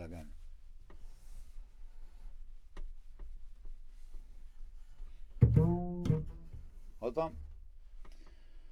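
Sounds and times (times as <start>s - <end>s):
synth bass: 5.4s - 6.7s.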